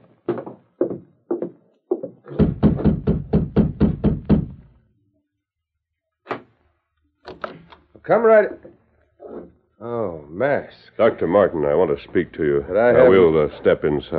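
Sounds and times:
man knocking on a wooden doctor's door: 0.3s - 4.7s
speech: 8.1s - 8.7s, 9.9s - 14.1s.

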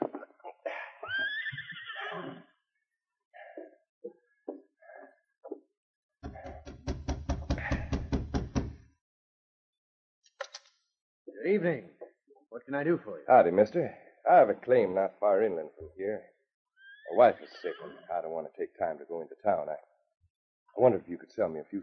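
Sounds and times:
horse whinnying and snorting as it stops outside a cabin: 1.0s - 2.5s
rapid rhythmic heavy thuds: 6.2s - 8.8s
speech: 11.4s - 12.0s, 12.6s - 16.3s, 17.1s - 19.9s, 20.8s - 21.8s.

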